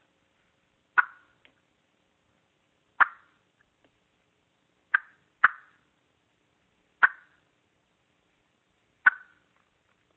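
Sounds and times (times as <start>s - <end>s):
turkey clucks made on a mouth call: 1.0s - 1.4s, 3.0s - 3.4s, 4.9s - 5.8s, 7.0s - 7.4s, 9.0s - 9.4s.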